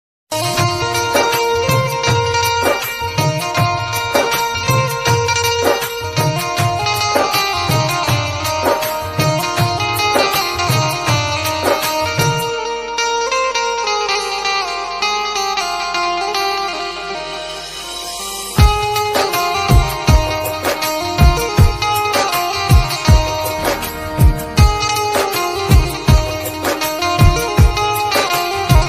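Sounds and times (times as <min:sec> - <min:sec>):
love background music ringtone on flute: 0:00.3 - 0:28.8.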